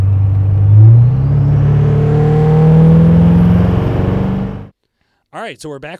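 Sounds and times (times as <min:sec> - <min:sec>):
pickup truck engine revving hard while accelerating in tow haul settings: 0:00.0 - 0:04.7
speech: 0:05.5 - 0:05.9.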